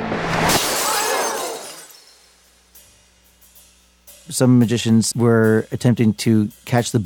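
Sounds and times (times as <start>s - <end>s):
glass pane on a stage shattering as a gun is fired through it: 0.4s - 2.7s
falling glass shards tinkling: 0.6s - 4.3s
speech: 4.3s - 7.0s.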